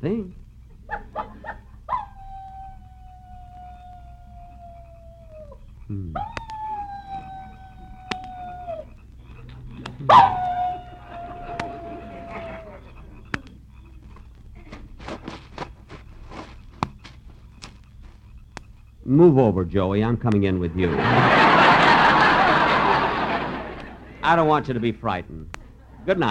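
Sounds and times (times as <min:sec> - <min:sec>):
laughter: 0:00.7 - 0:01.7, 0:08.9 - 0:13.6, 0:20.6 - 0:26.2
person in a tent imitating coyote howls: 0:01.9 - 0:13.4
speech: 0:19.2 - 0:21.6, 0:24.3 - 0:26.2.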